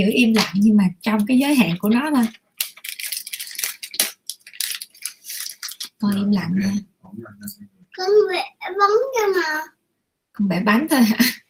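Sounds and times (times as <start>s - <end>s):
speech: 0.0s - 2.4s, 6.0s - 9.8s, 10.4s - 11.4s
snack wrapper crinkling as a child eats a snack: 1.2s - 6.3s.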